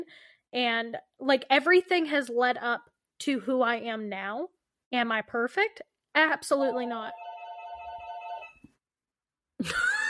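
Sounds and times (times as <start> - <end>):
speech: 0.0 - 7.2, 9.6 - 9.9
telephone ringing: 6.7 - 8.6.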